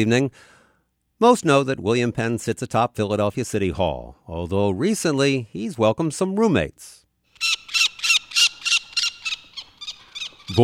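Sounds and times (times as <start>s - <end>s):
speech: 0.0s - 0.6s, 1.2s - 7.7s, 10.5s - 10.6s
peregrine falcon chicks calling from nest on a city hall building: 7.3s - 10.6s.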